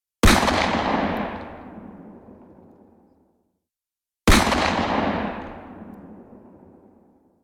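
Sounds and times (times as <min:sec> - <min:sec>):
distant gunfire: 0:00.2 - 0:02.0, 0:04.3 - 0:05.8.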